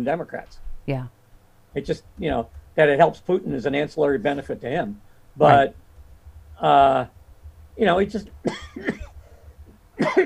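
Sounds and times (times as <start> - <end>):
speech: 0.0 - 5.8, 6.6 - 7.2, 7.8 - 9.0
person coughing: 8.5 - 9.2, 10.0 - 10.2.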